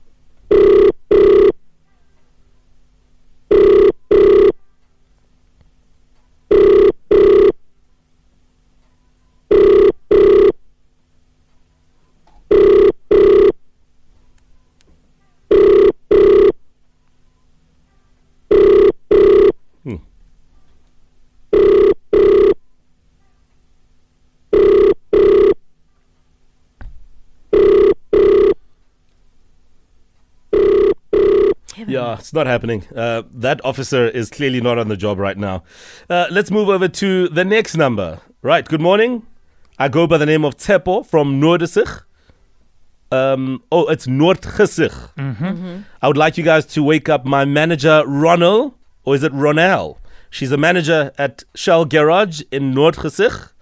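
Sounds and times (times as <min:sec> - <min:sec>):
telephone ringback tone on an outgoing call: 0:00.5 - 0:01.6, 0:03.5 - 0:04.7, 0:06.5 - 0:07.6, 0:09.0 - 0:10.6, 0:12.5 - 0:13.6, 0:15.5 - 0:16.6, 0:18.5 - 0:19.6, 0:21.5 - 0:22.6, 0:24.5 - 0:25.6, 0:27.5 - 0:28.6, 0:30.5 - 0:31.6
speech: 0:31.8 - 0:42.1, 0:43.1 - 0:53.5.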